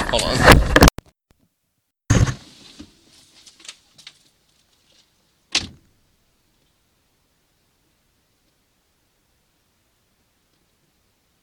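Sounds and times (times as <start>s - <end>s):
speech: 0.1s - 0.9s
door being locked: 5.5s - 5.8s.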